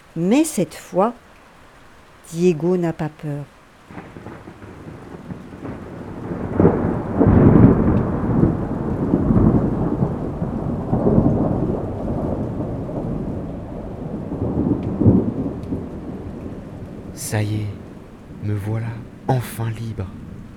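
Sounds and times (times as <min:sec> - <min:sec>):
steady rain over an island: 0:00.0 - 0:20.5
speech: 0:00.2 - 0:01.2, 0:02.3 - 0:04.0, 0:19.3 - 0:20.3
deep rolling thunder over an island: 0:03.9 - 0:19.3.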